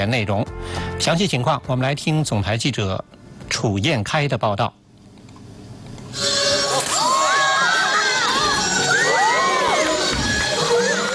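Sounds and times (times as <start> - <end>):
speech: 0.0 - 4.8
large audience cheering and shouting at opera performance: 6.6 - 11.1.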